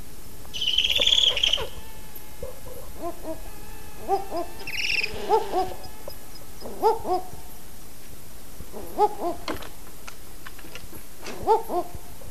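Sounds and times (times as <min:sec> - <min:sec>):
female owl giving a querulous trill in a nest hollow: 0:00.5 - 0:01.8, 0:02.4 - 0:07.4, 0:08.7 - 0:09.5.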